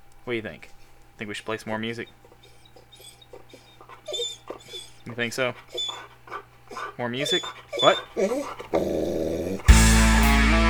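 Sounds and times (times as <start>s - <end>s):
speech: 0.2s - 2.3s, 5.1s - 9.7s
dog whining and yipping in a living room: 1.8s - 9.8s.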